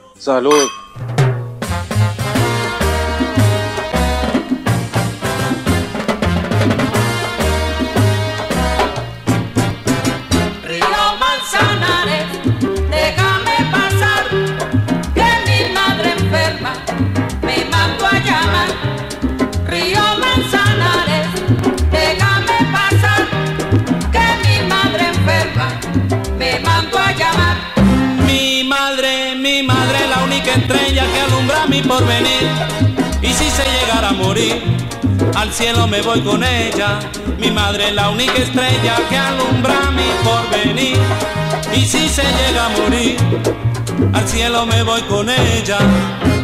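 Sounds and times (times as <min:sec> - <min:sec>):
cowbell accents: 0:00.0 - 0:01.7
bouncing bass line: 0:00.0 - 0:10.7, 0:11.6 - 0:28.5, 0:29.7 - 0:46.4
driving hand percussion: 0:00.0 - 0:28.4, 0:29.7 - 0:46.4
Latin son song with sung vocals and backing chorus: 0:00.0 - 0:46.4
speech: 0:00.2 - 0:01.2, 0:34.1 - 0:46.3.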